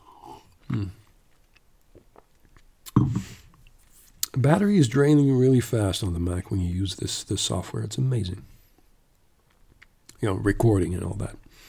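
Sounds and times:
soft gulping: 0.0s - 3.8s
person sipping a drink: 0.0s - 4.3s
speech: 0.7s - 1.0s, 4.4s - 8.5s, 10.2s - 11.6s.

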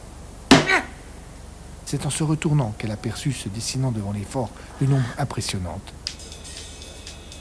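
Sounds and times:
violent kick against a car wheel: 0.5s - 0.9s
speech: 1.9s - 6.3s.

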